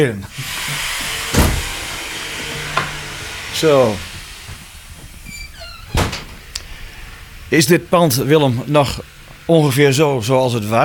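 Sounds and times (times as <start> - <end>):
speech: 0.0 - 0.5, 3.6 - 4.1, 7.5 - 10.8
door rattle: 0.3 - 10.0
front door opening with latch and wood thunk: 1.2 - 3.1, 5.5 - 6.7.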